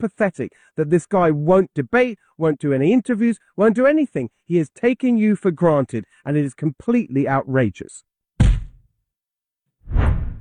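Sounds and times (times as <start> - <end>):
speech: 0.0 - 8.1
swoosh sound effect: 9.9 - 10.3.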